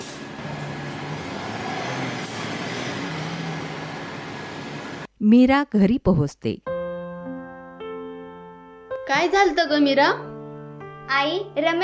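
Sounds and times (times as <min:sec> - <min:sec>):
bus air brakes hiss: 0:00.0 - 0:01.2, 0:01.9 - 0:03.2
arriving bus diesel engine rumble: 0:00.0 - 0:05.1
broadband road noise: 0:00.0 - 0:05.1
speech: 0:05.2 - 0:06.7, 0:09.1 - 0:10.3, 0:11.1 - 0:11.8.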